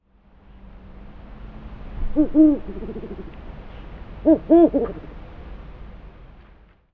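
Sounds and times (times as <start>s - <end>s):
Lesser Horned Owl Bubo magellanicus calling: 2.1s - 5.3s.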